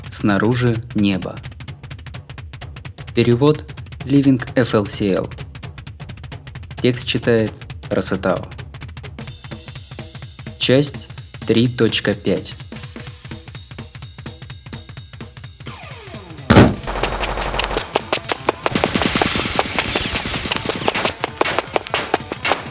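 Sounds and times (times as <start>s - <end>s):
speech: 0.2s - 1.5s, 3.2s - 5.4s, 6.8s - 8.6s, 10.7s - 12.6s
automatic weapon gunfire: 16.8s - 22.6s.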